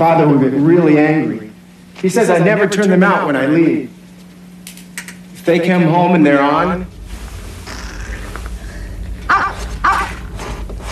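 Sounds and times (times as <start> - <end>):
speech: 0.0 - 4.0, 5.5 - 6.9
steady low hum: 0.0 - 10.8
dog barking: 9.3 - 10.3.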